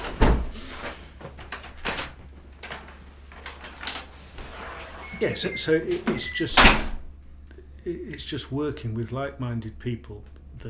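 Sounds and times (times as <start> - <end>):
door opening with a thud as someone comes through: 0.0 - 0.5, 4.5 - 7.1
speech: 5.2 - 7.0, 7.9 - 10.6.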